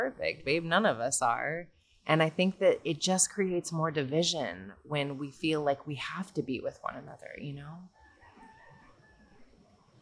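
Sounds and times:
speech: 0.0s - 8.0s
rooster crowing: 8.0s - 9.5s.

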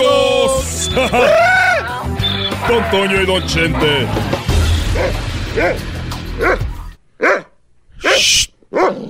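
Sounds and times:
laughter: 0.1s - 4.5s
speech: 2.7s - 6.6s
dog barking: 6.4s - 6.6s, 7.2s - 9.0s.

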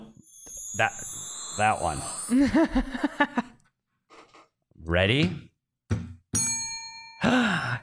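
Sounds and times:
bell ringing: 0.0s - 3.1s, 6.4s - 7.2s
speech: 0.8s - 3.5s, 4.9s - 5.5s
loud groaning sigh: 7.2s - 7.8s.

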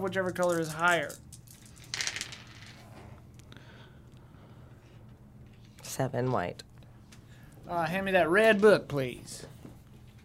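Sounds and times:
speech: 0.0s - 1.4s, 6.0s - 6.7s, 7.7s - 9.5s
dice tumbling across a hard surface: 0.0s - 2.9s
low hum: 0.0s - 10.2s.

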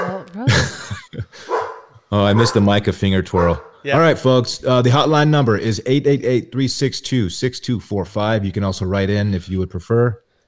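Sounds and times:
dog barking: 0.0s - 0.3s, 1.4s - 2.7s, 3.3s - 3.8s
laughter: 0.0s - 3.5s
speech: 2.1s - 10.2s.

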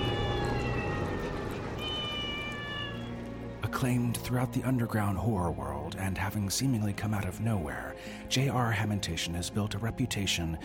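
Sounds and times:
cat meowing: 0.0s - 3.3s
speech: 3.7s - 10.6s.

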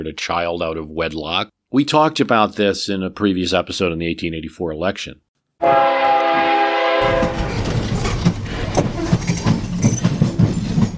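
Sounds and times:
speech: 0.0s - 6.1s
train horn blaring: 5.6s - 7.8s
train to Chicago rumbling past: 5.7s - 10.9s
train wheels clacking: 6.3s - 10.9s.

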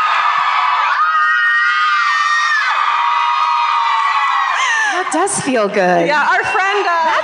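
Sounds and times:
people screaming into their hands: 0.0s - 5.0s
speech: 5.0s - 7.2s.

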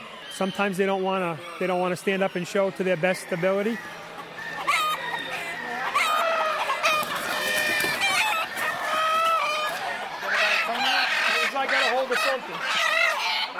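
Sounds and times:
speech: 0.4s - 4.0s
Old English game chickens clucking: 0.8s - 13.5s
Old English game rooster drawn-out crow: 3.7s - 11.3s.

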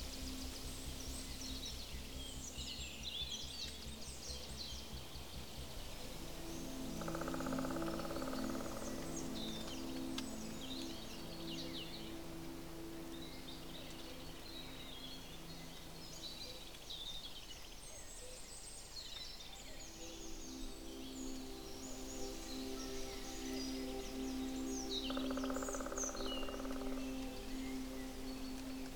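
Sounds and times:
steady low droning hum: 0.0s - 18.0s, 19.5s - 28.9s
birds chirping and twittering in the woods: 0.0s - 28.9s.

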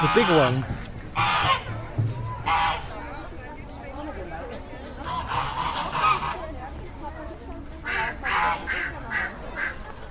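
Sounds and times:
geese honking: 0.0s - 3.2s, 4.9s - 6.5s, 7.8s - 10.0s
crowd of people and children talking: 0.0s - 10.1s.

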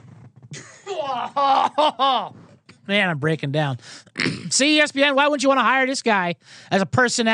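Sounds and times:
laughter: 0.5s - 2.4s
speech: 0.5s - 7.3s
harsh throaty coughing: 4.1s - 4.6s.

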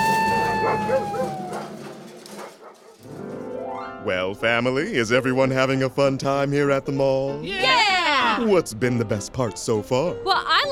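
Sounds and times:
excitable golden retrievers off the leash barking and yipping: 0.0s - 3.1s
speech: 4.0s - 7.8s, 8.4s - 10.6s.

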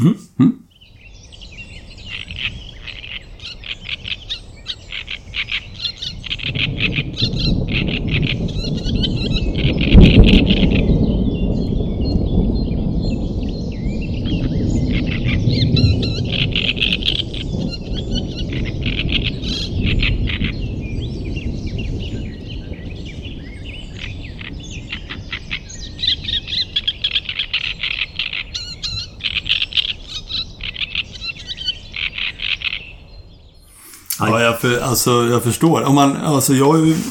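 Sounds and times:
speech: 0.0s - 0.6s, 34.9s - 37.0s
birdsong in a forest: 0.6s - 37.0s.

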